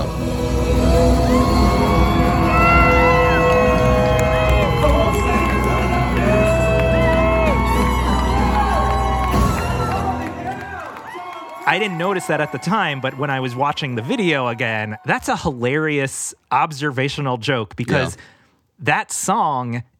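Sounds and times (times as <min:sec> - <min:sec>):
concert crowd roaring and cheering as the singer leaves the stage: 0:00.0 - 0:15.3
concert crowd members shouting and whooping: 0:00.4 - 0:15.5
speech: 0:11.8 - 0:19.9.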